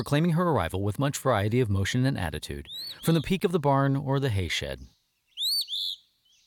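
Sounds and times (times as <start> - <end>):
speech: 0.0 - 5.0
eastern phoebe calling: 2.6 - 3.5, 4.8 - 6.4.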